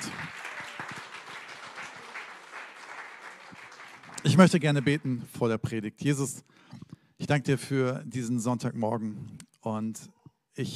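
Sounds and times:
audience applauding: 0.0s - 5.2s
speech: 4.3s - 10.7s.

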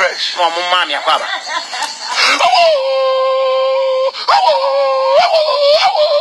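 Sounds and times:
speech: 0.1s - 3.5s, 4.3s - 6.1s
laughter: 0.9s - 3.3s
dogs whining and whimpering: 2.2s - 6.1s
dogs yelping and barking: 4.3s - 6.1s.

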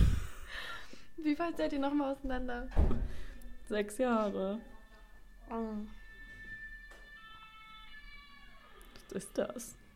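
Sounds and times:
speech: 1.2s - 4.7s, 5.5s - 6.0s, 9.1s - 9.8s
ambulance siren wailing outside: 5.4s - 8.6s.

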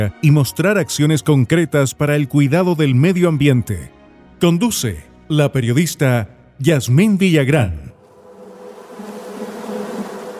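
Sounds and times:
speech: 0.0s - 7.9s
bees buzzing: 8.0s - 10.3s.

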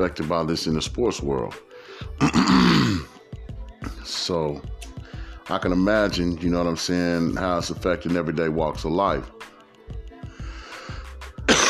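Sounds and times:
speech: 0.0s - 3.1s, 4.0s - 9.5s
rough throaty cough ending in a harsh hack: 2.2s - 3.2s, 11.5s - 11.6s.

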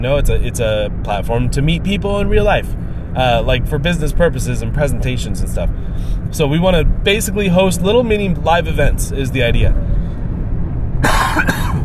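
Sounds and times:
speech: 0.0s - 9.9s
low hum: 0.0s - 11.8s
person coughing: 11.0s - 11.8s.

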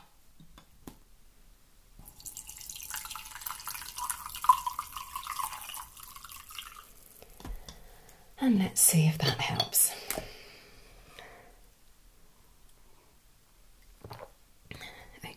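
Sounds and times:
green tea pouring into a cup: 2.0s - 7.3s
cup or teapot clinking: 2.2s - 6.8s
speech: 8.4s - 10.3s.

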